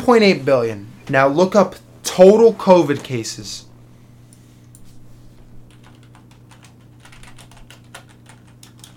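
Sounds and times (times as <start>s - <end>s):
speech: 0.0s - 3.7s
typing on a computer keyboard: 5.7s - 8.9s.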